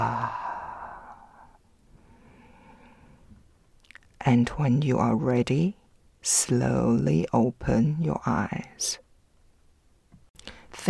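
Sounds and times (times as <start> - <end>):
loud exhale after holding a deep breath: 0.0 - 3.2
speech: 4.2 - 9.0.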